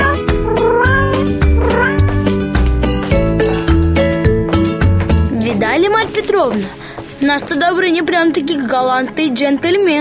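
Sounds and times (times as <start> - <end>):
cat meowing: 0.0 - 2.2
rhythmic music with regular beats: 0.0 - 9.9
speech: 6.4 - 9.9.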